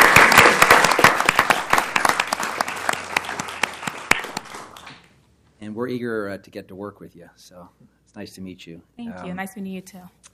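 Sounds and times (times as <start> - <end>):
audience applause in a room: 0.0 - 5.1
speech: 5.8 - 10.3.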